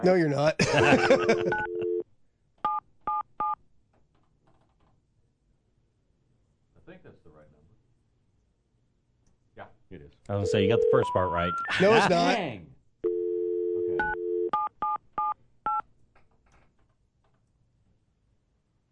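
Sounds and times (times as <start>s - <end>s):
speech: 0.0s - 1.8s, 9.9s - 12.7s
laughter: 0.6s - 1.9s, 11.7s - 12.4s
electronic cell phone dialing beeps: 1.2s - 2.0s, 13.1s - 15.8s.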